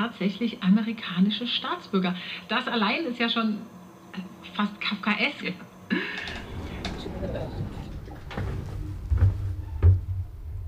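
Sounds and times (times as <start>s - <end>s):
speech: 0.1s - 6.4s
faint rumble: 6.0s - 10.6s
door swinging shut: 6.2s - 10.2s
dull low thuds of a closing door: 6.3s - 10.6s.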